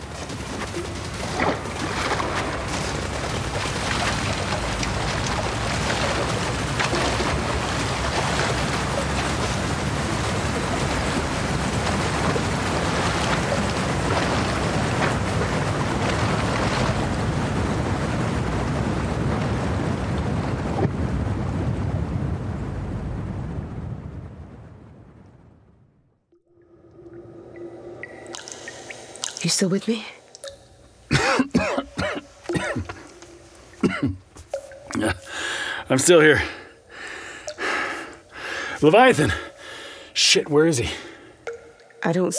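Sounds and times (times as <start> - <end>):
torrent of gushing water from an activated irrigation purge: 0.0 - 20.9, 27.0 - 42.3
faint rumbling: 0.0 - 40.2
speech: 29.5 - 30.2, 35.9 - 36.6, 38.8 - 39.5, 40.2 - 41.1, 42.0 - 42.3.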